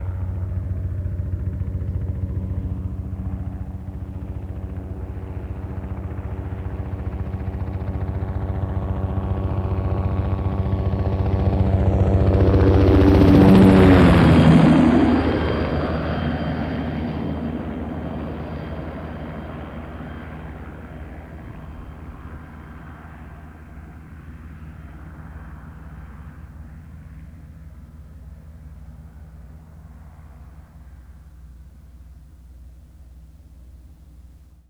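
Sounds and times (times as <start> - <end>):
military helicopter passing by: 0.0 - 33.6.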